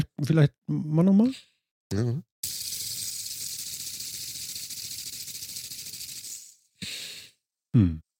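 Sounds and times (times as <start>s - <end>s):
speech: 0.2s - 2.8s, 7.7s - 8.0s
ball bearing with slight imbalance spinning: 2.4s - 6.6s.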